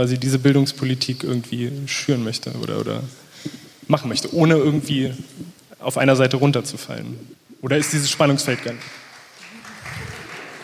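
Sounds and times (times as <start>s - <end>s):
speech: 0.0s - 9.0s
soft clapping: 8.4s - 10.6s.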